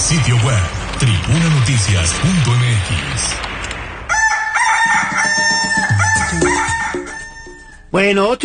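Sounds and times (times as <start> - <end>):
speech: 0.1 - 3.6, 7.9 - 8.4
rooster crowing: 4.1 - 7.9.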